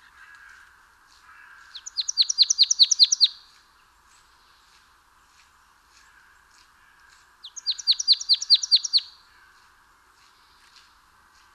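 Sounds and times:
marsh tit Poecile palustris calling: 1.7s - 3.4s, 7.4s - 9.1s.

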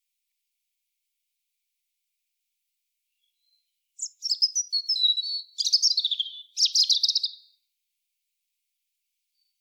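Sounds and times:
European robin singing a thin high phrase: 3.2s - 7.6s.

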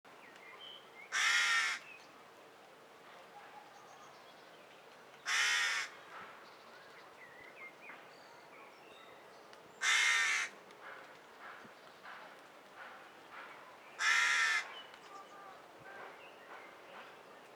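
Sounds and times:
Corvus corone carrion crow calling with rasping caws: 1.1s - 1.8s, 5.3s - 5.9s, 9.8s - 10.6s, 14.0s - 14.7s.

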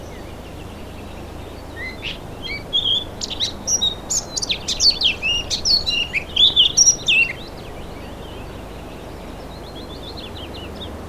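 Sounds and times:
Eurasian blackcap Sylvia atricapilla warbling: 1.8s - 7.5s.

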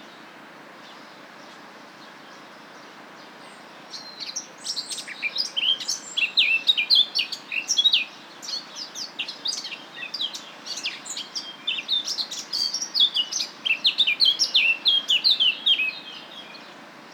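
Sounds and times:
Eurasian blackcap Sylvia atricapilla warbling song: 4.0s - 16.6s.

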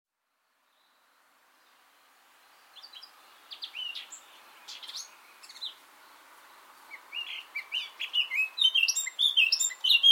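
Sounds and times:
Eurasian blackcap Sylvia atricapilla singing: 2.7s - 5.8s, 6.9s - 10.1s.

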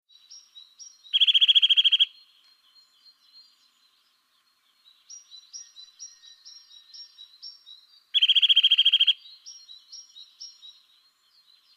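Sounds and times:
Eurasian nuthatch Sitta europaea calling: 0.2s - 2.3s, 5.1s - 10.9s.

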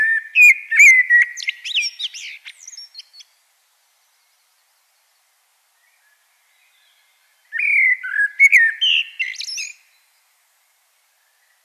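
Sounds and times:
Common blackbird Turdus merula singing: 0.0s - 3.3s, 5.8s - 10.1s.

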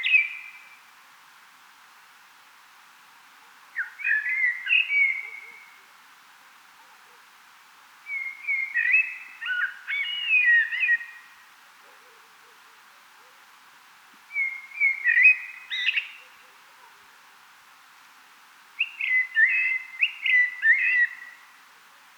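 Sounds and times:
Common blackbird singing: 3.8s - 5.6s, 8.1s - 11.2s, 14.3s - 16.2s, 18.8s - 21.4s.

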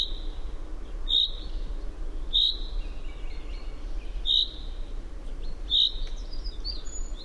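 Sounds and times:
common chaffinch calling, Fringilla coelebs: 0.0s - 0.4s, 1.1s - 1.6s, 2.3s - 4.7s, 5.4s - 7.2s.

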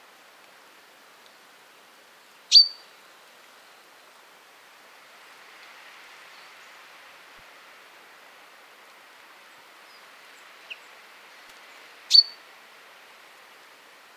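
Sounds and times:
soft background hiss: 0.0s - 14.1s
common chaffinch Fringilla coelebs metallic calls: 2.5s - 2.8s, 12.1s - 12.4s.

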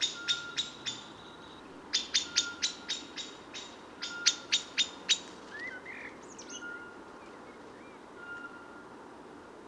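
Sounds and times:
common blackbird Turdus merula chinking calls: 0.0s - 5.3s.

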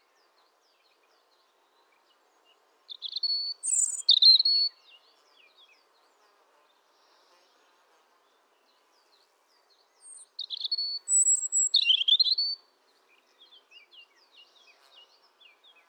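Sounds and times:
European robin Erithacus rubecula singing: 2.9s - 4.7s, 10.1s - 12.6s.

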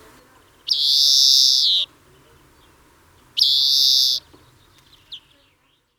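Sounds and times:
European greenfinch Chloris chloris giving nasal buzzy wheezes: 0.7s - 1.8s, 3.4s - 4.2s.

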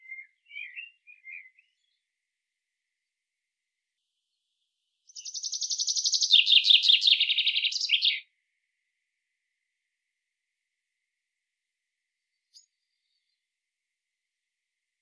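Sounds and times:
Common chaffinch Fringilla coelebs singing descending rattling trill: 0.0s - 2.0s, 5.1s - 8.3s.

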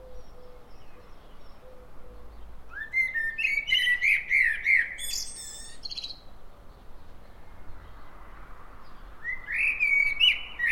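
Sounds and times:
common blackbird Turdus merula singing a whistled phrase: 0.0s - 6.2s, 9.2s - 10.7s.

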